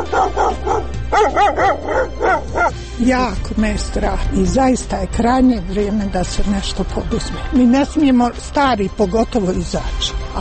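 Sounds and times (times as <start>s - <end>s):
stray dogs barking: 0.0s - 2.8s
speech: 3.0s - 10.3s.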